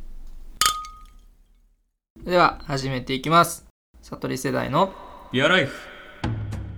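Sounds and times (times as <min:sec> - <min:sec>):
beer glasses clinking in a toast: 0:00.0 - 0:01.4, 0:02.2 - 0:03.3
speech: 0:02.3 - 0:06.4.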